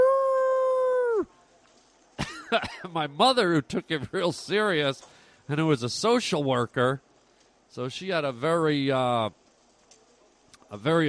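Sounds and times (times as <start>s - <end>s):
person imitating a werewolf howl: 0.0s - 1.3s
speech: 2.5s - 7.1s, 7.7s - 9.4s, 10.7s - 11.0s.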